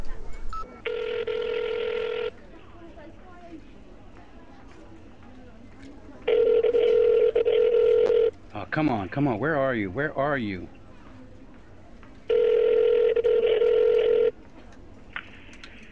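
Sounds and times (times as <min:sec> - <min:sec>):
telephone dialing tones: 0:00.6 - 0:02.3, 0:06.3 - 0:08.3, 0:12.3 - 0:14.4
speech: 0:08.8 - 0:10.8.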